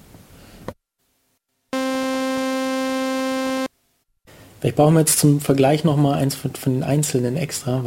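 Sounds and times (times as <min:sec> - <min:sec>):
synthesizer tone of mixed sawtooth and square wave: 0:01.8 - 0:03.7
speech: 0:04.6 - 0:07.8.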